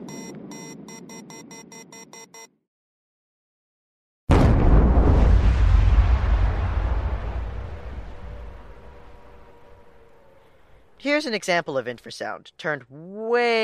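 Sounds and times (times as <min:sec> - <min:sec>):
electronic tones: 0:00.0 - 0:02.6
massive blast with deep roaring rumble: 0:04.3 - 0:11.0
speech: 0:11.1 - 0:13.6.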